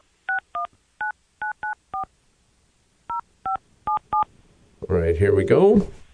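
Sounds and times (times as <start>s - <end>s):
phone keypad two-tone dialing beeps: 1.4s - 2.1s, 3.1s - 4.3s
speech: 4.9s - 6.0s.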